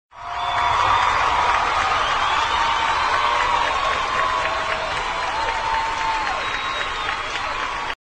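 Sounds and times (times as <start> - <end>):
applause: 0.1 - 8.0.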